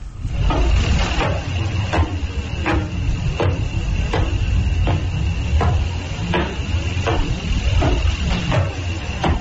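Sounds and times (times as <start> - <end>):
constant hiss: 0.0 - 9.3
regular broadband thumps from a radio telescope recording of a pulsar: 0.4 - 9.3.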